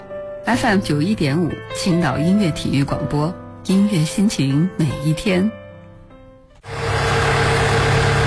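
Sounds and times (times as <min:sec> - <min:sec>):
speech: 0:00.5 - 0:05.6
car engine idling: 0:06.7 - 0:08.2.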